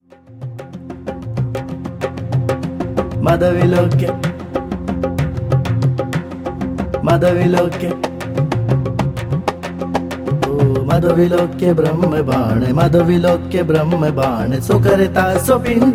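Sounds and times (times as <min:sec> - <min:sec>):
tambour drum: 0:00.4 - 0:15.9
person chanting: 0:03.2 - 0:04.2, 0:07.0 - 0:08.0, 0:10.5 - 0:15.9.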